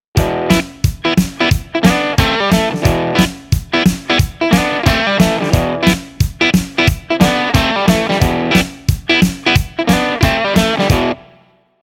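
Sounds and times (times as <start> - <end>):
guitar double stop riff: 0.2 - 11.5.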